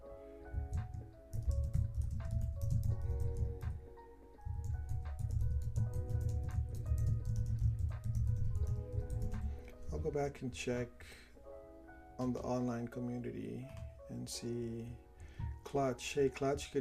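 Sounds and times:
typing on a computer keyboard: 0:00.6 - 0:03.8, 0:04.5 - 0:09.5
speech: 0:10.1 - 0:11.3, 0:12.2 - 0:16.7.

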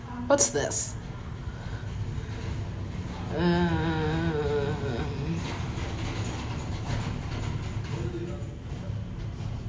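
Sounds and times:
speech: 0:00.3 - 0:01.0
train rolling on tracks with rhythmic clacking: 0:00.4 - 0:09.6.

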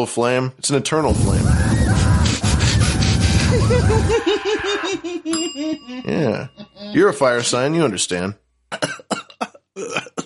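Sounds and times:
speech: 0:00.0 - 0:02.4, 0:03.6 - 0:09.0, 0:09.8 - 0:10.2
laughter: 0:02.8 - 0:05.9
person coughing harshly after choking on coffee: 0:08.7 - 0:10.2.

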